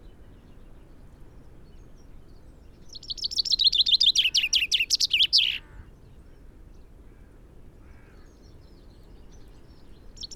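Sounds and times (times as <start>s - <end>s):
common chaffinch Fringilla coelebs singing: 2.9s - 5.6s, 10.2s - 10.3s.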